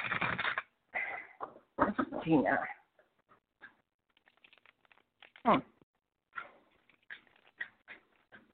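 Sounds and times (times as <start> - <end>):
cards being shuffled for a card reading: 0.0 - 0.7, 4.1 - 5.7, 6.7 - 7.6
speech: 2.2 - 2.8, 5.5 - 5.7.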